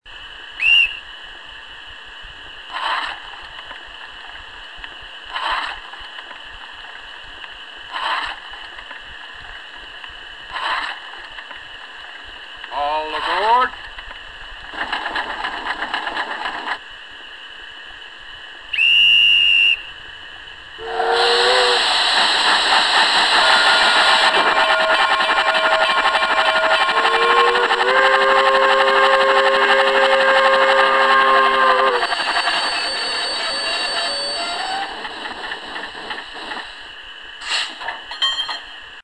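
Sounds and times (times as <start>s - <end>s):
Shay locomotive on a forest railway: 0.0s - 39.0s.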